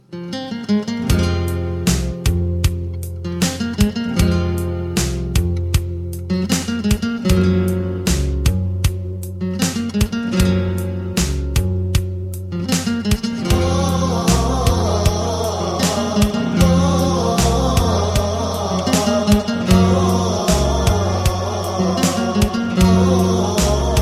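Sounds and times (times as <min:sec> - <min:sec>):
classical guitar playing: 0:00.1 - 0:17.4, 0:18.5 - 0:23.9.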